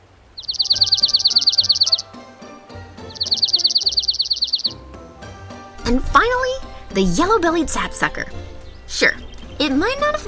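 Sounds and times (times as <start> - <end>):
dark-eyed junco trilling with fast runs of high chips: 0.4 - 2.2, 3.0 - 4.8, 7.7 - 10.2
speech: 0.8 - 2.2, 5.9 - 10.2.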